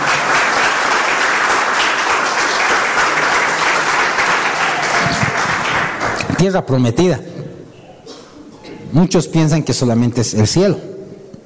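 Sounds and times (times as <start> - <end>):
large crowd applauding loudly: 0.0 - 6.4
speech: 6.4 - 7.3, 8.9 - 10.9.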